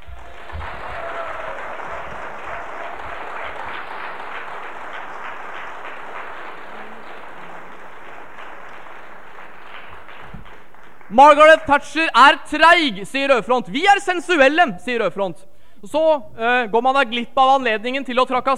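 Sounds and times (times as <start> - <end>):
audience applause at a student society meeting: 0.0 - 11.2
speech: 11.1 - 18.5.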